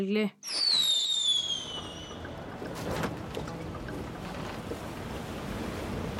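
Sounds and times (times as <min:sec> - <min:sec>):
speech: 0:00.0 - 0:00.8
high falling whistle: 0:00.4 - 0:02.2
stormy sea waves around a boat: 0:01.1 - 0:06.1.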